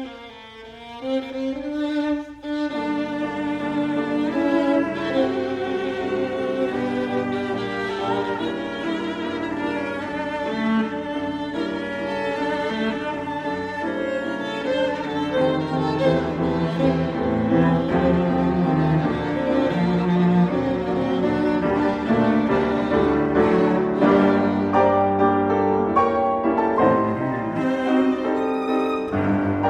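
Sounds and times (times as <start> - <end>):
piano trio playing a moderato movement in G minor: 1.1 - 29.6.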